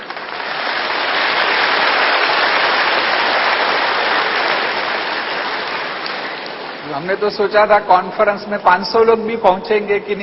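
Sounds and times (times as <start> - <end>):
crowd clapping: 0.0 - 7.2
speech: 7.0 - 10.2.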